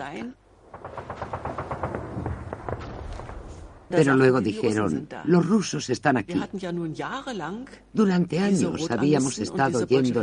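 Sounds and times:
speech: 0:00.0 - 0:01.1, 0:03.9 - 0:10.2
distant explosions: 0:00.6 - 0:04.0.

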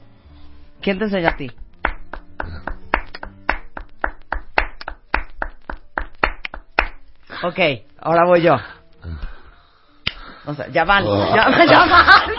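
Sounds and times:
speech: 0:00.8 - 0:01.6, 0:07.4 - 0:09.3, 0:10.4 - 0:12.3
hand clapping: 0:01.2 - 0:07.1, 0:10.0 - 0:10.2
laughter: 0:11.0 - 0:12.3.

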